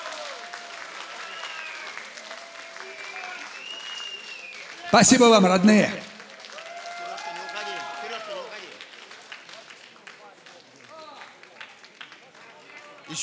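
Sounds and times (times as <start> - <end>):
crowd clapping: 0.0 - 13.2
voices calling out and cheering: 4.8 - 8.7
speech: 4.9 - 6.0.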